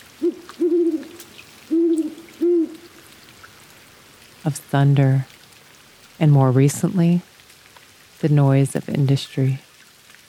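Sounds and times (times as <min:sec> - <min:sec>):
Mexican spotted owl hooting in a forest in Rocky Mountain National Park, Colorado: 0:00.1 - 0:03.1
speech: 0:04.4 - 0:05.3, 0:06.2 - 0:07.3, 0:08.2 - 0:09.6.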